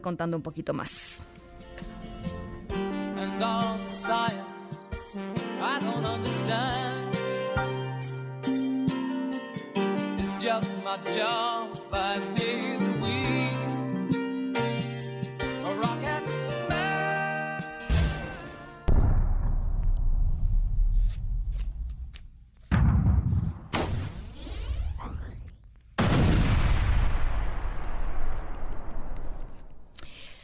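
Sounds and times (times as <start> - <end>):
speech: 0.0 - 2.4, 3.4 - 4.5
short tonal musical passage: 1.2 - 19.1
loud heavy rocket explosions: 17.9 - 21.5, 22.7 - 29.9.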